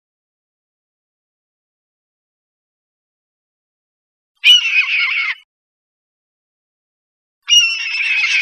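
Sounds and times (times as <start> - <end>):
red-tailed hawk giving harsh raspy screams: 4.4 - 5.4, 7.5 - 8.3.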